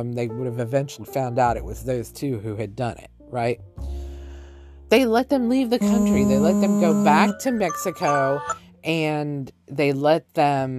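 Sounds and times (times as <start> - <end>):
speech: 0.0 - 4.0, 4.9 - 10.7
steady electronic alarm chime ringing: 5.8 - 8.6.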